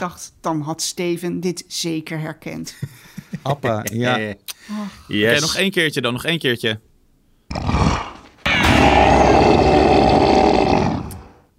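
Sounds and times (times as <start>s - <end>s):
speech: 0.0s - 6.9s, 7.5s - 7.7s
laughter: 2.8s - 4.3s
small cartoon monkey creature growl: 7.5s - 11.4s.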